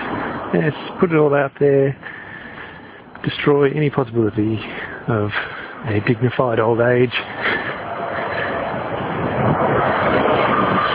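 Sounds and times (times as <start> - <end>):
speech: 0.5 - 2.2, 3.2 - 7.5
bus driving past with engine and road roar: 7.2 - 10.9.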